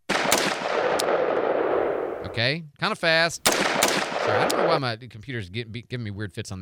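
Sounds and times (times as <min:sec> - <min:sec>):
AR-15 rifle shots: 0:00.0 - 0:02.3, 0:03.5 - 0:04.9
speech: 0:02.3 - 0:06.5.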